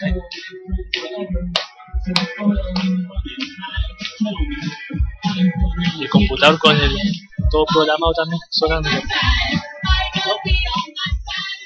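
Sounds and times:
speech: 0:00.0 - 0:01.5, 0:02.1 - 0:02.6, 0:06.1 - 0:09.7
hands clapping: 0:00.0 - 0:05.4
thumping bass-heavy beat: 0:00.0 - 0:11.6.

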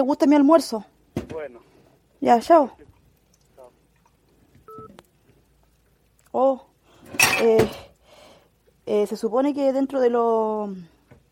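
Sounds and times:
speech: 0:00.0 - 0:02.9, 0:06.3 - 0:06.7, 0:07.4 - 0:07.9, 0:08.9 - 0:10.9
low hissy background: 0:00.0 - 0:11.3
faint brief electronic blips: 0:04.6 - 0:05.1
electronic telephone two-pitch beep from a phone call: 0:04.7 - 0:05.0.

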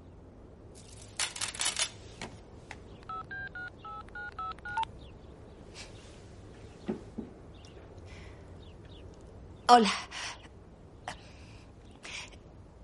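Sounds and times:
faint handling clicks and rustles: 0:00.8 - 0:03.2
electronic keypad tones of a mobile phone being dialed: 0:03.0 - 0:04.9
speech: 0:09.7 - 0:10.1.

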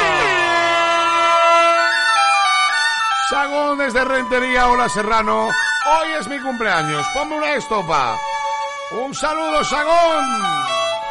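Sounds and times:
loud sustained brassy air horn blast: 0:00.0 - 0:03.4
speech: 0:03.4 - 0:08.3, 0:08.9 - 0:10.8.

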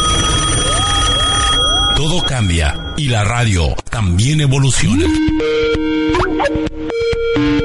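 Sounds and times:
old telephone bell ringing: 0:00.0 - 0:03.4
speech: 0:02.0 - 0:07.6.

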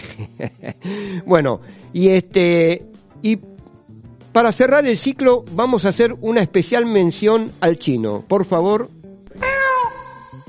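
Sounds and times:
laughter: 0:00.0 - 0:00.8
speech: 0:00.2 - 0:03.5, 0:04.4 - 0:09.0
high drawn-out kitten meow: 0:09.4 - 0:10.4.

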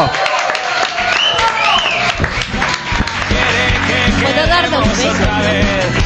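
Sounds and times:
studio audience cheering: 0:00.0 - 0:05.7
studio audience applauding: 0:00.0 - 0:06.0
studio audience whistles: 0:01.1 - 0:02.2.

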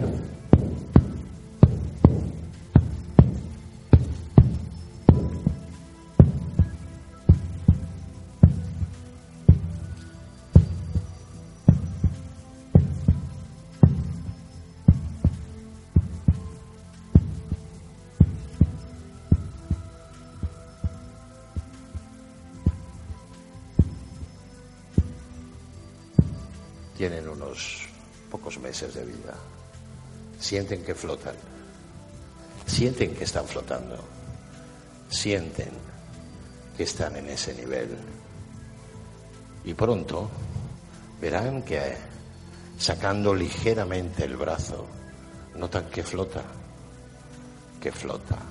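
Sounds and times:
steady deep heartbeat thumping: 0:00.0 - 0:24.4, 0:25.0 - 0:25.3, 0:26.2 - 0:26.6
low hum: 0:00.0 - 0:26.9
speech: 0:27.0 - 0:27.8, 0:28.4 - 0:29.6, 0:30.4 - 0:31.6, 0:32.7 - 0:34.2, 0:35.1 - 0:36.0, 0:36.8 - 0:38.2, 0:39.6 - 0:40.4, 0:41.2 - 0:42.1, 0:42.8 - 0:45.0, 0:45.6 - 0:46.6, 0:47.8 - 0:48.4.

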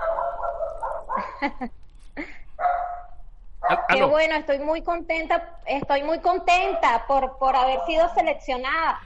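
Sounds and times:
small female poodle barking in high-pitched yaps in Valencia, Venezuela: 0:00.0 - 0:01.4, 0:02.6 - 0:04.2, 0:06.5 - 0:08.2
speech: 0:01.4 - 0:02.4, 0:03.8 - 0:09.0.

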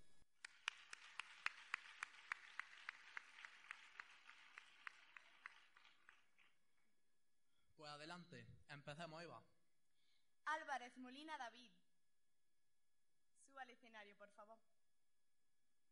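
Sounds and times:
audience applause at a ceremony: 0:00.4 - 0:06.6
speech: 0:07.8 - 0:09.5, 0:10.5 - 0:11.8, 0:13.5 - 0:14.7.

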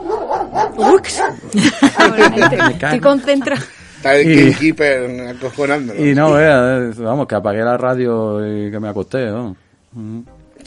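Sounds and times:
dog barking: 0:00.0 - 0:01.5
speech: 0:00.6 - 0:10.6
laughter: 0:01.4 - 0:03.7.

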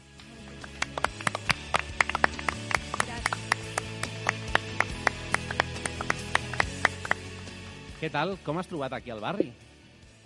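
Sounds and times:
small audience clapping: 0:00.2 - 0:07.6
speech: 0:08.0 - 0:09.6.

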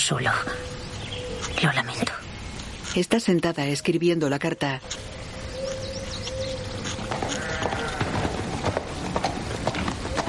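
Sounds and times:
speech: 0:00.1 - 0:00.7, 0:01.6 - 0:02.2, 0:02.9 - 0:05.2
horse hooves clip-clopping at a steady trot along a road: 0:04.8 - 0:10.2.

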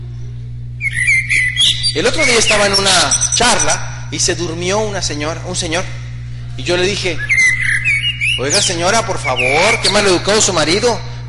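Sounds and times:
low hum: 0:00.0 - 0:11.2
bird chirping sound effect: 0:00.8 - 0:03.8, 0:07.0 - 0:10.5
speech: 0:02.0 - 0:06.0, 0:06.6 - 0:07.3, 0:08.4 - 0:11.1.

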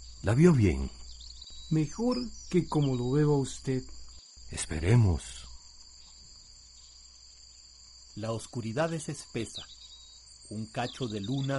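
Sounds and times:
crickets chirping in a nighttime jungle: 0:00.0 - 0:11.5
speech: 0:00.2 - 0:01.0, 0:01.7 - 0:05.4, 0:08.2 - 0:09.8, 0:10.5 - 0:11.5.

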